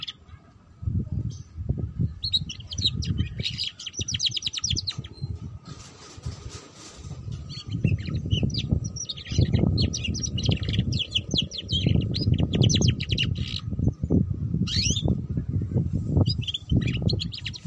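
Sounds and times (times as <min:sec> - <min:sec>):
canary singing quick chirps and rolling trills: 0:00.0 - 0:00.3, 0:02.2 - 0:05.4, 0:07.3 - 0:14.0, 0:14.7 - 0:15.2, 0:16.2 - 0:17.6
loud low-pitched rumbling: 0:00.8 - 0:17.6.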